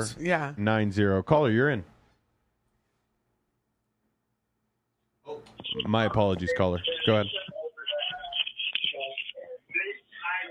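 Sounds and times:
speech: 0:00.0 - 0:01.9, 0:05.8 - 0:07.6
television voices through a tinny phone line: 0:05.3 - 0:10.4.

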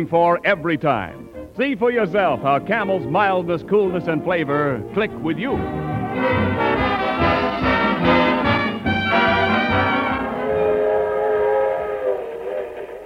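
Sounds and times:
speech: 0:00.0 - 0:06.6
train rumbling at a suburban railroad station: 0:06.6 - 0:13.0.

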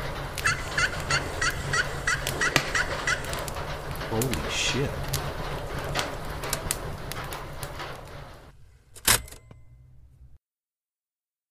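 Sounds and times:
low hum: 0:00.0 - 0:10.4
turkey hen yelps: 0:00.4 - 0:03.4
speech: 0:04.2 - 0:05.1.

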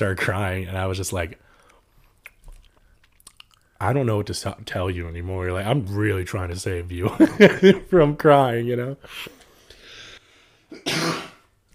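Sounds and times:
speech: 0:00.0 - 0:01.5, 0:03.8 - 0:09.4, 0:10.7 - 0:11.2
harsh cough: 0:10.7 - 0:11.5.

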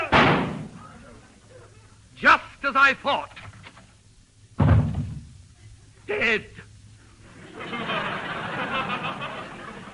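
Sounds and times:
door slamming: 0:00.1 - 0:00.8, 0:04.6 - 0:05.3
speech: 0:02.7 - 0:03.4, 0:06.1 - 0:06.6
laughter: 0:07.2 - 0:09.9.

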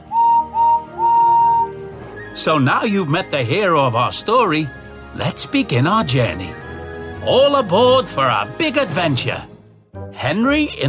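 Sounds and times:
steam engine whistle blasts: 0:00.0 - 0:02.4
speech: 0:02.4 - 0:06.6, 0:07.2 - 0:09.5, 0:10.2 - 0:10.8.

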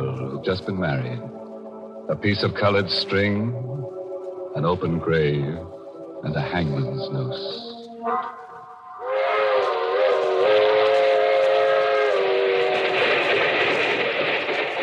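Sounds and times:
speech: 0:00.4 - 0:01.4, 0:02.1 - 0:03.8, 0:04.5 - 0:08.4
loud sustained train whistle: 0:08.0 - 0:14.6
long passenger train rumbling on humming rails: 0:09.0 - 0:14.8.

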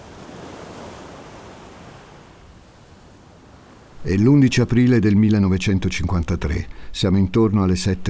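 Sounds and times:
sea waves washing on a beach: 0:00.0 - 0:07.0
speech: 0:04.0 - 0:08.0.

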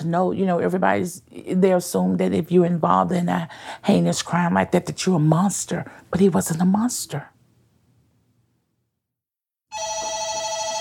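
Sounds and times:
speech: 0:00.0 - 0:07.4
telephone ringing with a steady electronic trill: 0:09.7 - 0:10.8.

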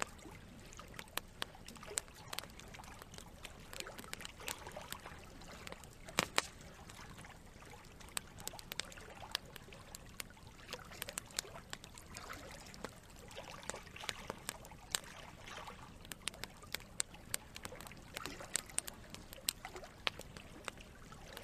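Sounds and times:
creekside campfire crackling with sharp pops: 0:00.0 - 0:21.4
steady low rush of running water: 0:00.0 - 0:21.4.

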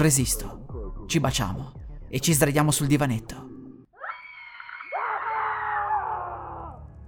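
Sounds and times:
speech: 0:00.0 - 0:03.5
people screaming: 0:04.0 - 0:07.0.

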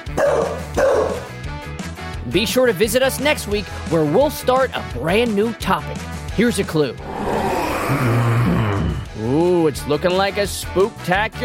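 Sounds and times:
bulldog barking deep and gruff: 0:00.1 - 0:01.3
speech: 0:02.3 - 0:07.2, 0:07.9 - 0:08.6, 0:09.2 - 0:11.4.

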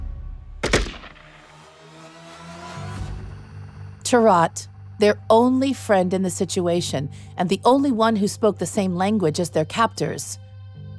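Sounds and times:
gunshots on a hillside: 0:00.6 - 0:01.7
speech: 0:04.1 - 0:10.4.

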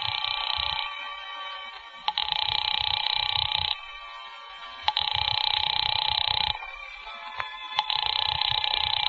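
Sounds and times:
telephone ring tone through an earpiece: 0:00.0 - 0:01.1, 0:02.0 - 0:04.1, 0:04.8 - 0:06.7, 0:07.8 - 0:09.0.

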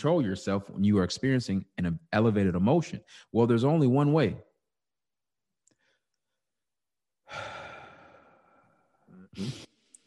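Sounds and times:
speech: 0:00.0 - 0:04.5, 0:07.3 - 0:07.5, 0:09.4 - 0:09.6
person sighing forcefully: 0:07.2 - 0:09.9
person taking a long deep breath: 0:07.2 - 0:10.0.

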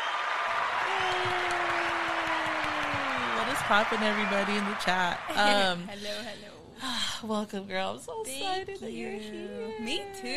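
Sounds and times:
crowd applauding: 0:00.0 - 0:05.9
person cheering: 0:00.6 - 0:05.9
speech: 0:03.7 - 0:10.3.

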